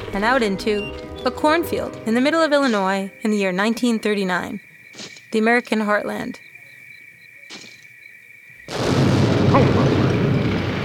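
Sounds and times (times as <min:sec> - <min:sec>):
speech: 0:00.2 - 0:06.5
single loud explosion with rumbling roar: 0:08.7 - 0:10.8.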